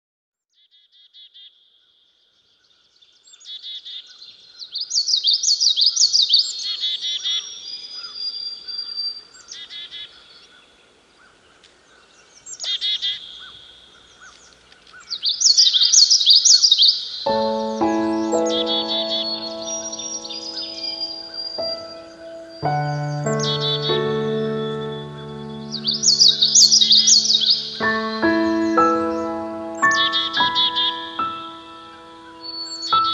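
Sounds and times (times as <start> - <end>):
common yellowthroat: 4.8 - 33.1.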